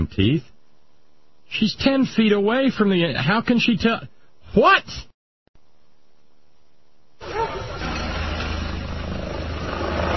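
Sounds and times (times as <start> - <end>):
speech: 0.0 - 0.5, 1.5 - 5.1
helicopters flying overhead: 8.6 - 10.1.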